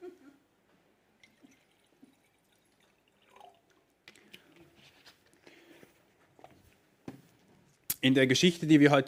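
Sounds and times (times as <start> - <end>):
water trickling and splashing into a wine glass: 1.2 - 3.9
speech: 8.0 - 9.0.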